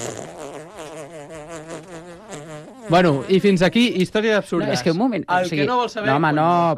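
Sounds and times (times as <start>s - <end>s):
speech: 0.0s - 0.4s, 2.9s - 6.7s
fart sound effect: 0.0s - 3.5s.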